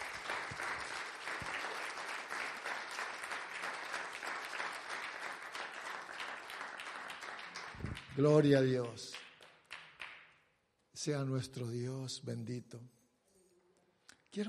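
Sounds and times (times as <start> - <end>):
audience applauding loudly: 0.0 - 10.3
speech: 8.2 - 9.2, 11.0 - 13.0.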